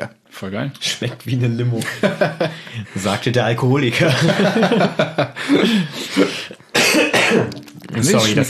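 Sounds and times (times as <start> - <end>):
speech: 0.0 - 6.6, 7.3 - 8.4
laughter: 1.7 - 3.2, 4.0 - 6.7
person coughing: 5.5 - 7.7.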